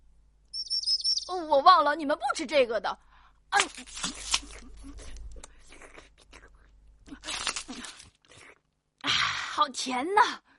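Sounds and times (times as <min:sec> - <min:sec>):
small birds chirping: 0:00.5 - 0:01.7
speech: 0:01.3 - 0:04.5, 0:09.6 - 0:10.5.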